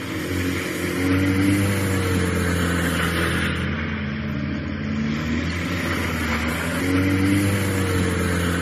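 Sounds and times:
car engines revving during illegal races in a snowy icy ski-resort parking lot: 0.0s - 8.6s.

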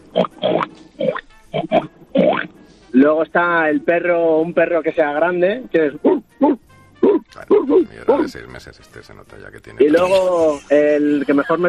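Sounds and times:
speech: 0.1s - 0.4s, 3.1s - 6.6s, 7.7s - 11.6s
person imitating a pig oinking: 0.1s - 2.5s, 6.4s - 8.4s.

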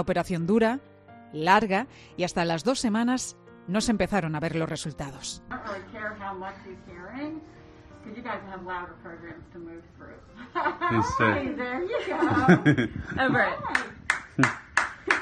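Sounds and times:
speech: 0.0s - 14.6s
laughter: 10.4s - 13.8s
sharp hand claps near a baby: 13.6s - 15.2s.

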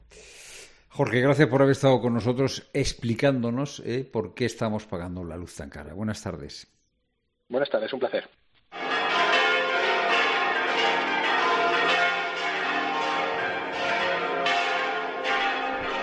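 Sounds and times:
speech: 1.0s - 6.8s, 7.5s - 8.8s
large cathedral church bells pealing: 8.8s - 16.0s.

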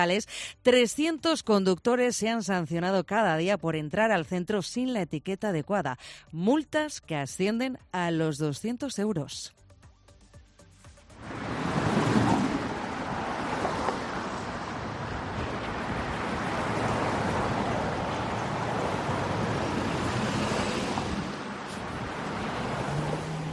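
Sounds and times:
speech: 0.0s - 9.6s
road noise of city traffic: 10.6s - 23.5s
car engines rumbling in city traffic: 11.2s - 23.5s.

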